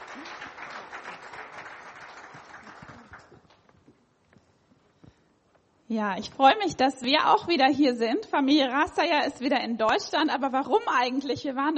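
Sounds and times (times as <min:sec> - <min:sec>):
audience applause: 0:00.0 - 0:03.6
speech: 0:05.9 - 0:11.7.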